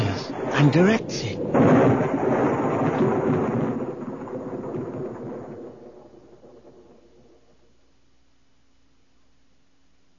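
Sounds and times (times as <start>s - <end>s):
thunder from a thunderstorm rumbling: 0.0s - 7.7s
speech: 0.6s - 2.1s.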